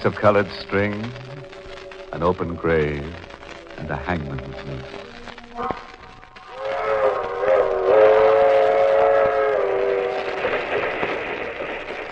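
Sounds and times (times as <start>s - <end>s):
speech: 0.0s - 1.3s, 2.1s - 5.8s
passenger train whistle blowing a multi-tone blast: 7.0s - 10.4s.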